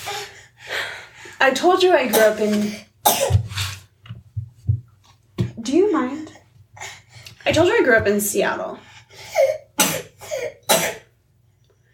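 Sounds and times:
speech: 0:01.4 - 0:02.9, 0:07.5 - 0:08.9
person coughing: 0:03.0 - 0:03.5, 0:09.3 - 0:11.1.

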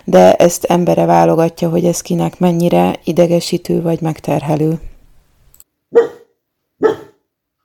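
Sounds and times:
speech: 0:00.1 - 0:04.9, 0:05.9 - 0:06.2, 0:06.8 - 0:07.0
dog barking: 0:05.9 - 0:07.3.

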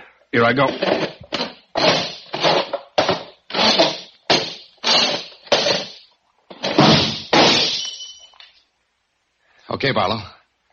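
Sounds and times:
speech: 0:00.3 - 0:01.1, 0:09.8 - 0:10.4
chair scraping as it is squirmed over to a table: 0:00.6 - 0:07.3
drinking glass knocked onto floor and shattering: 0:01.8 - 0:08.6.

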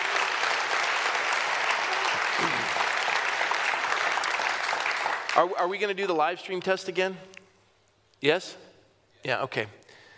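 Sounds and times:
audience applauding: 0:00.0 - 0:05.6
speech: 0:05.4 - 0:07.3, 0:08.2 - 0:09.8.

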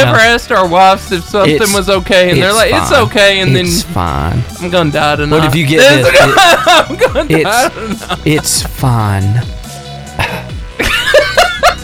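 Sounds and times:
speech: 0:00.0 - 0:09.6
laughter: 0:02.4 - 0:04.5, 0:05.2 - 0:08.8, 0:10.2 - 0:11.8
short harsh coughs: 0:10.2 - 0:10.6.

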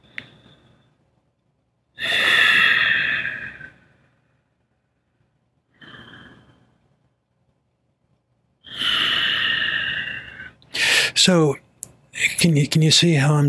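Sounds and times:
slow deep breathing with audible exhales during a breathing exercise: 0:00.0 - 0:01.0, 0:02.0 - 0:07.0, 0:08.6 - 0:11.2
speech: 0:11.2 - 0:11.6, 0:12.4 - 0:13.4.

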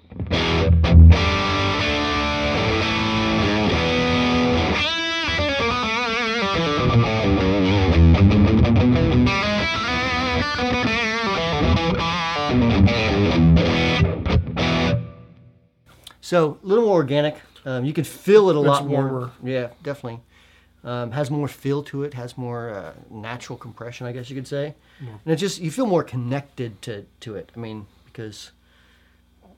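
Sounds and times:
electric guitar through analog distortion pedal into amp: 0:00.0 - 0:15.6
speech: 0:16.3 - 0:28.6.

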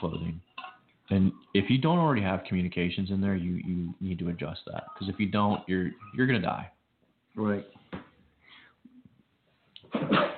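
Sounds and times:
speech: 0:00.0 - 0:00.4, 0:01.1 - 0:06.8, 0:07.4 - 0:08.1, 0:10.1 - 0:10.3
quiet breaths: 0:07.7 - 0:09.8
loud sneeze: 0:09.9 - 0:10.3.

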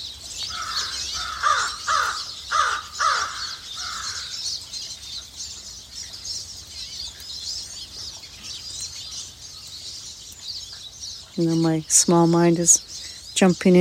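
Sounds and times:
crow cawing harshly: 0:00.5 - 0:04.4
speech: 0:11.4 - 0:13.7.

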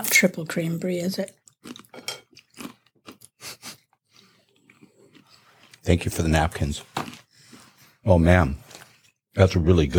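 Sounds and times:
speech: 0:00.2 - 0:01.8, 0:05.9 - 0:07.0, 0:08.0 - 0:08.6, 0:09.4 - 0:09.9
crunchy chewing of a cracker with cheese: 0:01.2 - 0:06.0, 0:06.7 - 0:07.6.

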